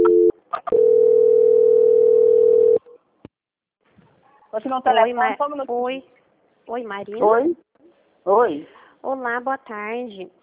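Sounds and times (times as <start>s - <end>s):
telephone line tone during a call transfer: 0.0s - 2.8s
speech: 4.6s - 10.4s.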